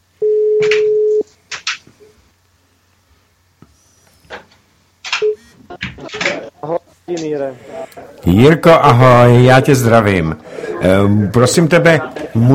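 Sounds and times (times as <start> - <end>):
ringback tone on an outgoing phone call: 0.2 - 1.2
laughter: 5.6 - 8.2, 10.5 - 12.5
speech: 6.1 - 12.5.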